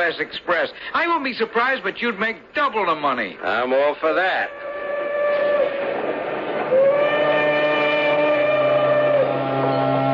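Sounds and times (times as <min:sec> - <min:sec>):
speech: 0:00.0 - 0:04.7
steam train whistle: 0:04.5 - 0:10.1.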